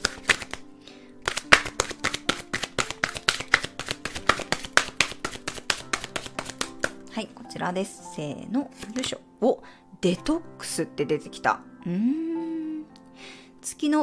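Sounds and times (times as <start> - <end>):
oracle card deck being shuffled: 0.0 - 7.1, 8.7 - 9.2
speech: 7.2 - 12.3, 13.2 - 14.0.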